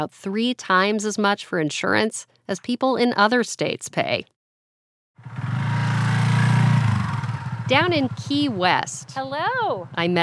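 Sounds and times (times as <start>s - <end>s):
speech: 0.0s - 4.4s, 7.7s - 10.2s
motorcycle engine starting and idling: 5.2s - 10.2s.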